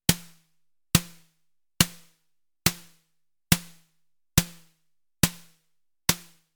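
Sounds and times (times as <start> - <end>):
snare drums: 0.1 - 0.4, 2.7 - 3.8, 4.4 - 6.4.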